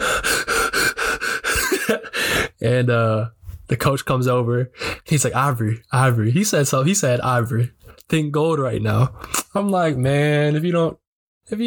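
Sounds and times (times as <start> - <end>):
person gasping and panting after being hit: 0.0 - 2.6
speech: 1.9 - 11.6.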